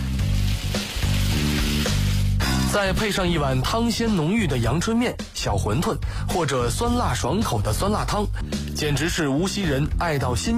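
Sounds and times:
batter pan-frying in rapeseed oil in an iron wok: 0.0s - 3.2s
speech: 2.8s - 10.5s.

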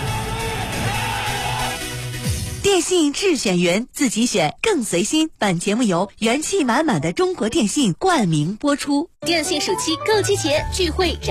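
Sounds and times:
crowd of model workers and staff yelling and cheering for local athletes: 0.0s - 2.2s
speech: 2.7s - 11.3s.

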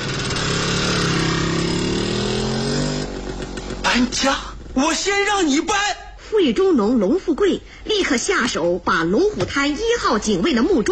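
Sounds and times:
motorcycle engine revving and pulling away: 0.0s - 5.7s
speech: 4.0s - 10.9s.

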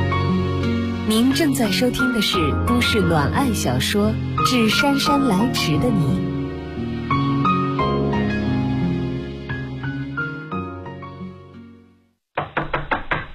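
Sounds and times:
melodic music: 0.0s - 11.8s
speech: 1.1s - 6.3s
heavy pounding on a door: 12.4s - 13.3s.

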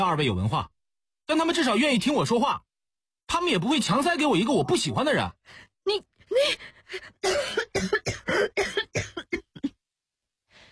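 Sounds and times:
speech: 0.0s - 2.7s, 3.3s - 9.1s
woman recovering from pneumonia coughing nonstop: 7.2s - 9.8s.

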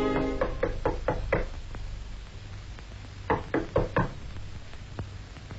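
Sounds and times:
knocking on a door: 0.2s - 1.5s, 3.3s - 4.2s.

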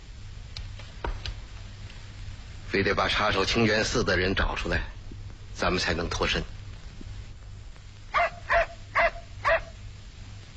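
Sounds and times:
low hum: 0.0s - 10.5s
speech: 2.7s - 5.0s, 5.6s - 6.5s
dog barking: 8.1s - 9.8s.

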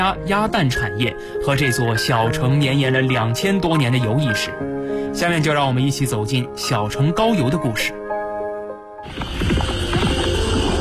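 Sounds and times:
speech: 0.0s - 8.0s
post horses clip-clopping through a town beside a canal: 9.1s - 10.7s.

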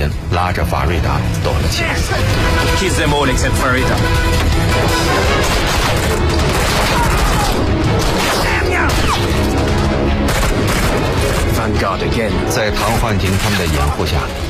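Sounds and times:
speech: 0.0s - 14.4s
gunfire: 4.0s - 11.8s.

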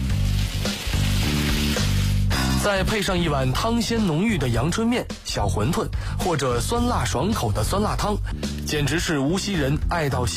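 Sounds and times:
white batter frying in rapeseed oil in an iron pan swirled by hand: 0.0s - 2.6s
speech: 2.6s - 10.3s.

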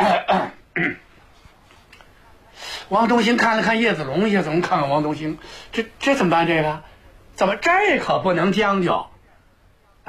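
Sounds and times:
storyteller mimicking men coughing: 0.0s - 1.0s
speech: 2.9s - 9.1s.

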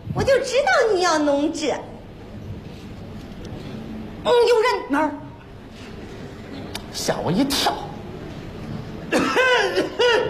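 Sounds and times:
speech: 0.4s - 1.9s, 4.2s - 5.2s, 6.9s - 7.9s, 9.1s - 10.2s
elderly man coughing: 9.1s - 10.2s.

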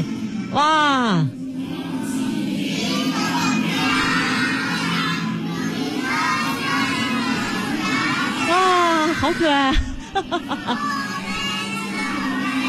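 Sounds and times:
speech: 0.5s - 1.4s, 9.3s - 11.0s
class of young children singing a song together: 1.7s - 8.5s, 10.5s - 12.6s
laughter: 9.1s - 11.6s.

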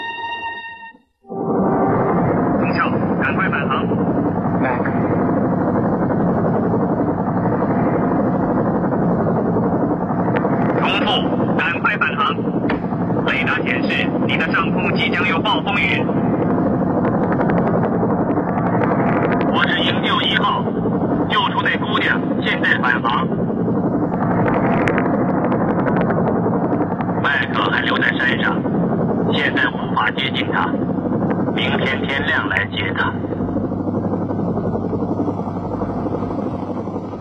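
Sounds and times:
rescue helicopter hovering by a mountain cliff: 1.2s - 37.2s
sharp clatters and crackles: 3.6s - 37.2s.

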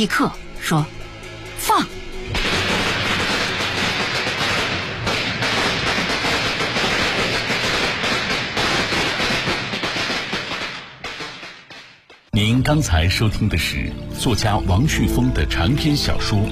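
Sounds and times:
speech: 0.0s - 1.0s, 1.6s - 2.0s, 12.6s - 16.4s
long string of firecrackers exploding: 2.3s - 12.3s.

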